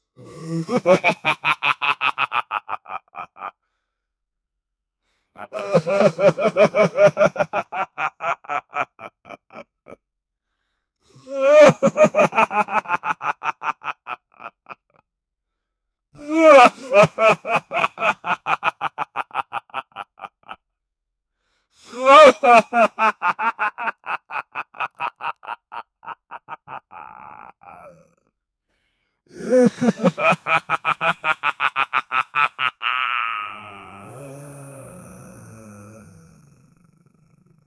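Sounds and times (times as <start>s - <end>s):
beast man laughing: 0.5s - 3.5s, 5.4s - 10.0s, 11.4s - 14.8s, 16.3s - 20.6s, 22.0s - 28.0s, 29.4s - 33.9s.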